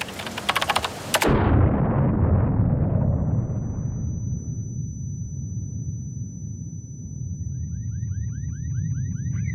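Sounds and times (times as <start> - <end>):
car bomb exploding with a massive boom and low rumble: 1.2 - 4.2
warbling alarm: 3.1 - 9.5
thin high ringing tone: 3.7 - 9.5.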